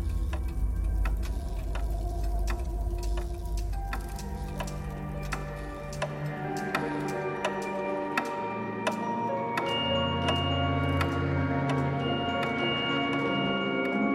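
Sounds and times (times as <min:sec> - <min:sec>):
low continuous rumble: 0:00.0 - 0:05.3
clock ticking: 0:00.0 - 0:14.0.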